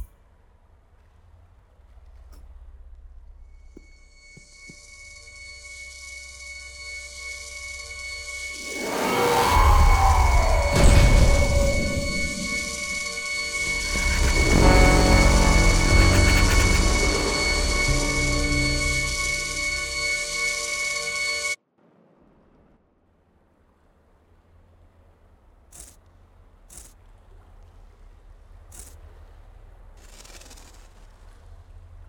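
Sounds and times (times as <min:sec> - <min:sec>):
fourth module collecting noise: 0:05.7 - 0:21.6.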